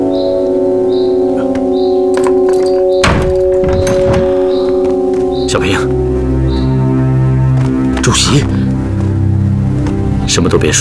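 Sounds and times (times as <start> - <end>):
sustained tonal background: 0.0 - 10.7
heavy cell door opening with thunks and clanks: 2.1 - 5.3
speech: 8.1 - 8.6, 10.4 - 10.7.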